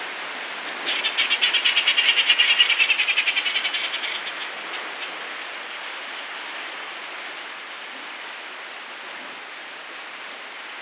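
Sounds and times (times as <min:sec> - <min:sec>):
Inca tern giving harsh chattering notes: 0:00.8 - 0:06.4.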